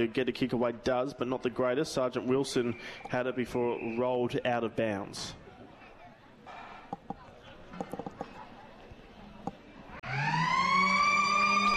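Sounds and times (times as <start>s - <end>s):
speech: 0.0s - 5.4s
stadium crowd noise: 0.0s - 10.1s
knocks: 7.8s - 8.3s
football ground final siren blaring: 10.0s - 11.7s.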